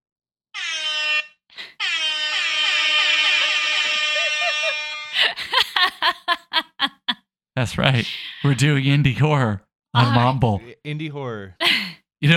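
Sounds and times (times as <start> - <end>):
loud air horn blasts: 0.6 - 5.3
laughter: 2.6 - 7.2, 7.9 - 8.9, 10.0 - 10.8
speech: 7.6 - 12.3.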